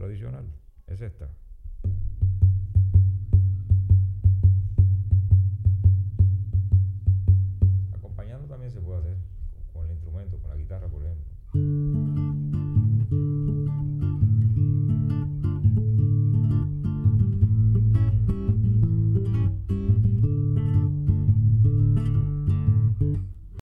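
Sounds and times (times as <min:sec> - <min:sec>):
cinquillo rhythm: 0:01.5 - 0:23.6.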